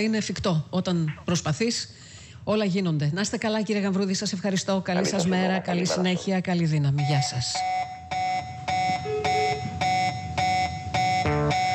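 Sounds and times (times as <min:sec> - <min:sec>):
speech: 0:00.0 - 0:07.9
loud electronic alarm ringing in harmonic beeping tones: 0:07.0 - 0:11.7.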